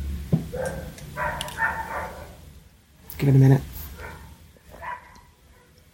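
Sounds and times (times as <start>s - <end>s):
dog barking right outside: 0.5s - 2.4s, 3.9s - 5.8s
speech: 3.2s - 3.7s.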